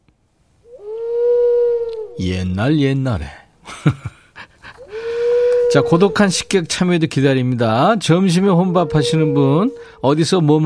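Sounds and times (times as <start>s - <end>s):
owl hooting: 0.6s - 2.2s, 4.8s - 6.7s, 7.8s - 10.1s
speech: 2.2s - 4.2s, 5.7s - 10.6s
laughter: 3.7s - 5.0s.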